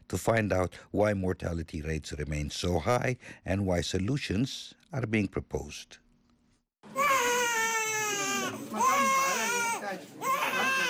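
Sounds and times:
speech: 0.1 - 6.0, 9.9 - 10.8
newborn baby girl crying at a hospital in Zimbabwe: 6.9 - 10.8.

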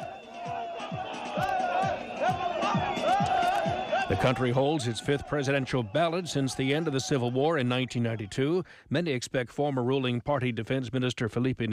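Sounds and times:
rhythmic pulse: 0.0 - 7.4
large rally crowd of supporters cheering and chanting: 0.0 - 8.6
speech: 4.2 - 11.7.

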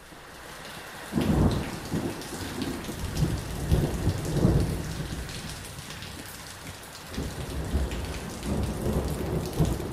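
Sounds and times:
heavy rain drumming on a corrugated iron roof: 0.0 - 9.9
deep thunder rumbling in long rolls: 1.1 - 5.6, 7.2 - 9.9.

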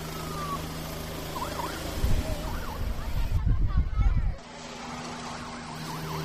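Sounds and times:
siren wailing: 0.0 - 3.4, 4.7 - 6.2
helicopter taking off: 0.0 - 6.2.

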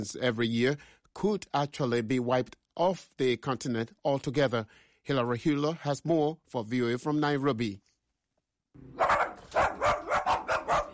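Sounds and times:
speech: 0.0 - 7.9, 8.8 - 9.1
dog barking: 8.9 - 10.9.

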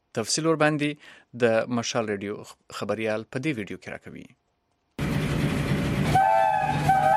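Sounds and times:
speech: 0.2 - 4.4
passenger train rumbling along the rails: 5.0 - 7.1
tonal passenger train horn: 6.0 - 7.1.

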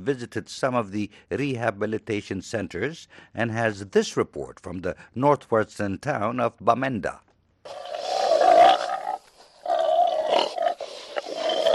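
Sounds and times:
speech: 0.0 - 8.0
pigs squealing and grunting on a pig farm in Bamenda Cameroon: 7.7 - 11.7.

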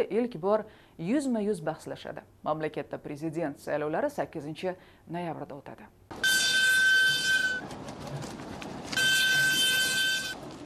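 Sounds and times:
speech: 0.0 - 6.3
freight train from China rumbling as it arrives in northern Afghanistan: 6.4 - 10.6.

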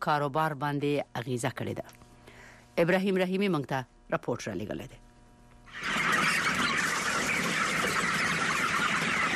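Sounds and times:
speech: 0.0 - 2.0, 2.8 - 5.0
about 2000 chickens clucking in a large hall on a poultry farm in Khost: 5.6 - 9.3.

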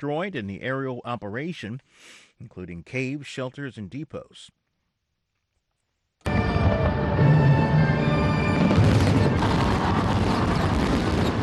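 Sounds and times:
speech: 0.0 - 4.6
fireworks exploding over Victoria Harbor in Hong Kong for National Day: 6.3 - 11.4.

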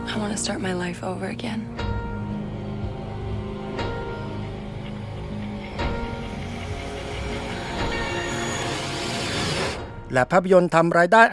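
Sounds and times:
speech: 0.1 - 1.8, 10.1 - 11.3
commuter train rumbling on rails: 2.4 - 9.8.

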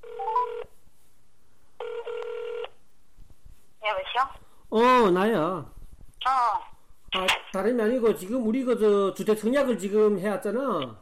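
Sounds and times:
telephone ringing through the line: 0.0 - 0.7, 1.8 - 2.8
speech: 4.2 - 6.6, 7.2 - 10.9.

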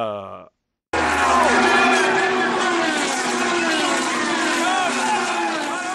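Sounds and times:
speech: 0.0 - 0.5
crowd noise: 1.0 - 5.9
race car engines roaring: 1.0 - 5.9.

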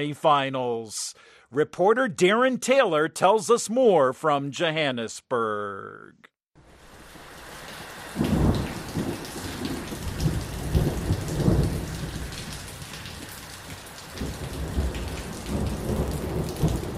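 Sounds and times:
speech: 0.0 - 6.3
heavy rain drumming on a corrugated iron roof of a small house during a thunderstorm: 6.6 - 16.9
deep thunder rumbling: 8.2 - 13.2, 14.1 - 16.9.

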